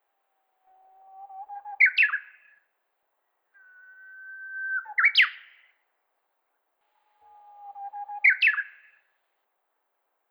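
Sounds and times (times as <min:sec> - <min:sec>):
bird song with level whistle and buzzy flourish: 0:00.6 - 0:02.7, 0:03.6 - 0:05.8, 0:07.0 - 0:09.1.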